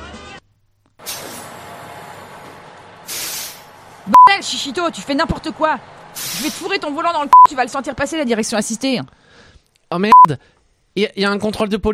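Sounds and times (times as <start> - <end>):
bus air brakes releasing: 1.0 - 2.4, 3.0 - 4.1, 6.1 - 6.8
speech: 4.1 - 11.9.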